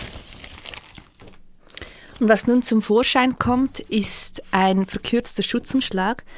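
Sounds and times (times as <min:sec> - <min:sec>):
plastic sleeve crinkling as a book is pulled free: 0:00.0 - 0:04.4
speech: 0:02.2 - 0:06.3.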